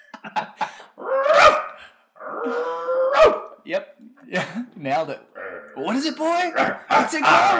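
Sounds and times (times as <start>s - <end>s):
person imitating a dog barking and yowling: 1.0s - 3.6s, 5.4s - 5.8s, 6.4s - 7.5s
speech: 3.7s - 7.5s.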